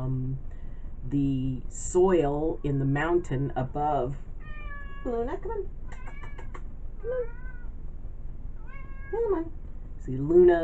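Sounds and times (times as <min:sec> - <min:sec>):
low steady rumble: 0:00.0 - 0:10.6
speech: 0:01.1 - 0:04.3, 0:05.0 - 0:05.8, 0:07.0 - 0:07.4, 0:09.1 - 0:10.6
cat meowing: 0:04.4 - 0:05.2, 0:05.9 - 0:06.6, 0:07.2 - 0:07.7, 0:08.6 - 0:09.4.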